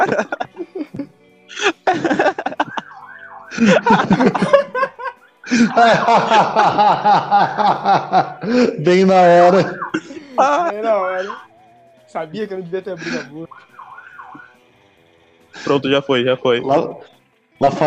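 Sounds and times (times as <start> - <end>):
speech: 0.0 - 0.4, 3.6 - 4.6, 5.8 - 9.8, 10.4 - 11.5, 12.1 - 13.7, 15.6 - 17.8
several people laughing in rhythmic bursts: 0.0 - 11.6, 12.9 - 13.5
police siren wailing: 2.4 - 7.0, 9.2 - 14.9.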